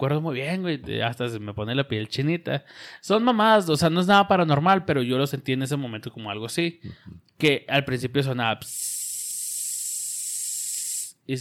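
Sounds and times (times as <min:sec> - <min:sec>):
speech: 0:00.0 - 0:09.0
voice imitating TV static white noise: 0:08.7 - 0:11.2.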